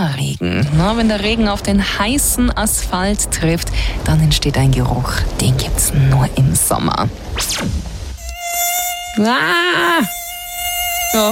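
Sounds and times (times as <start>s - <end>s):
speech: 0.1s - 7.9s, 9.2s - 10.2s, 11.1s - 11.3s
mosquito buzzing: 8.2s - 11.3s.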